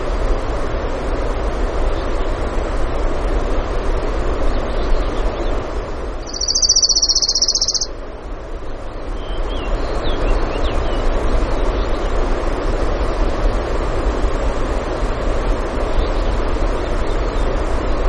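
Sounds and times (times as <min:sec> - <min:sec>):
steady rushing background: 0:00.0 - 0:18.0
orange-crowned warbler song trill: 0:06.2 - 0:07.9
faint thin notes from other birds: 0:06.3 - 0:07.9.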